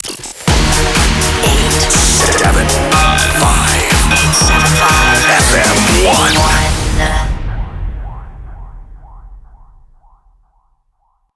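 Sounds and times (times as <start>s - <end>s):
jingle music in D minor: 0.5s - 7.4s.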